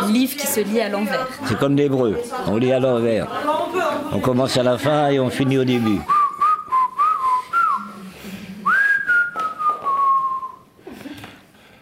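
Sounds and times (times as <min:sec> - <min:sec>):
speech: 0:00.1 - 0:06.2
person whistling a wandering melody: 0:06.1 - 0:08.0, 0:08.6 - 0:10.7.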